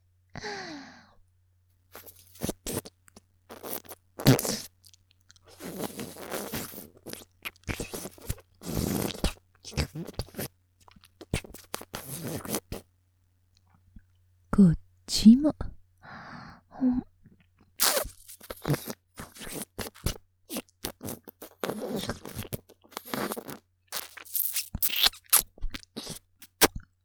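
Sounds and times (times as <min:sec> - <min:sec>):
speech: 0:00.4 - 0:00.9, 0:14.6 - 0:15.6
breathy sigh: 0:00.4 - 0:01.2
lips nibbling and licking an earlobe in ASMR style: 0:02.0 - 0:12.8, 0:17.8 - 0:26.9.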